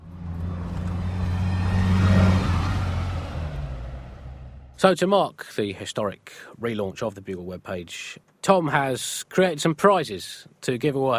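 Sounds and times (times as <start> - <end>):
heavy bus engine revving and pulling away: 0.0 - 4.8
speech: 4.8 - 11.1.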